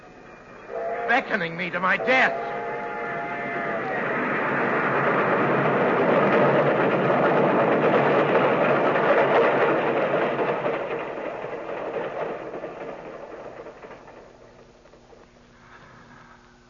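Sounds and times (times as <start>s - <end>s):
train bell: 0.0s - 4.4s
approaching train wheels and engine roar: 0.0s - 16.6s
train whistle: 0.7s - 4.6s
speech: 1.1s - 2.5s.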